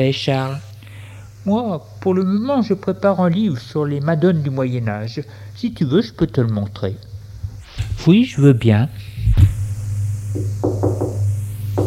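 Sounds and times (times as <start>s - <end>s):
speech: 0.0s - 0.7s, 1.4s - 7.1s, 7.8s - 9.1s
steady low hum: 0.0s - 11.8s
knocking on a door: 10.3s - 11.2s.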